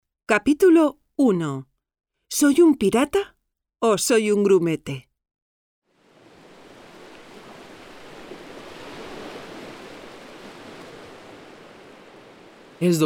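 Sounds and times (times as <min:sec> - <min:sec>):
speech: 0:00.3 - 0:01.7, 0:02.3 - 0:05.1, 0:12.8 - 0:13.0
calm sea waves: 0:05.9 - 0:13.0.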